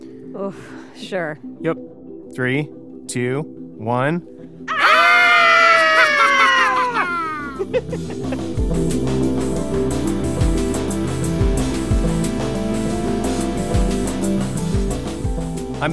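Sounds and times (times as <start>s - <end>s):
music: 0.0s - 15.9s
speech: 0.4s - 4.6s, 7.6s - 10.0s
group of people screaming Halloween screams: 4.7s - 7.7s
laughter: 5.5s - 8.6s.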